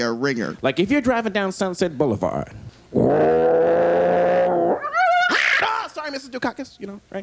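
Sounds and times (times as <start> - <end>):
speech: 0.0 - 3.8, 6.2 - 7.2
person imitating a growling cat: 3.0 - 5.1.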